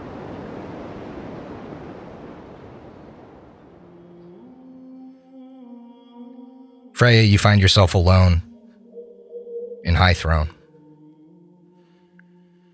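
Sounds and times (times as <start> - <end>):
violent waves of the open sea: 0.0 - 4.1
speech: 7.0 - 8.5, 9.9 - 10.6.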